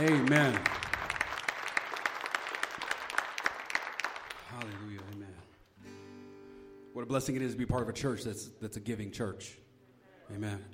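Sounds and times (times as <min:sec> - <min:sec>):
speech: 0:00.0 - 0:00.8, 0:07.1 - 0:09.7, 0:10.3 - 0:10.7
room full of people applauding: 0:00.0 - 0:05.8.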